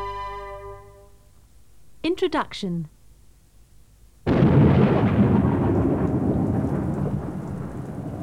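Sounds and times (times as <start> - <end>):
speech: 2.2 - 3.0
heavy rain pouring: 4.3 - 8.2
thunder rumble: 4.3 - 8.2.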